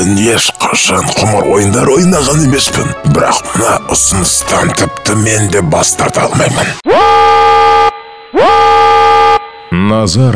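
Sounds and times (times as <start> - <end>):
speech: 0.1 - 8.8, 9.8 - 10.3
building fire alarm horn blasts: 6.8 - 10.1.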